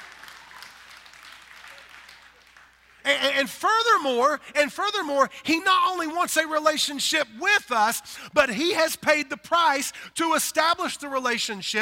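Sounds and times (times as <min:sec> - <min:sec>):
dense steady clapping: 0:00.0 - 0:03.1
speech: 0:03.1 - 0:11.8.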